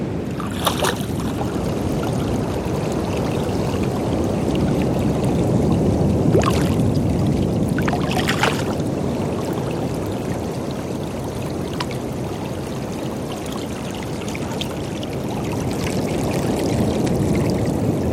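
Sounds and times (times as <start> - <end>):
steady roar of ocean surf washing in: 0.2 - 15.4
brief sharper splashes or crackles: 0.3 - 18.1.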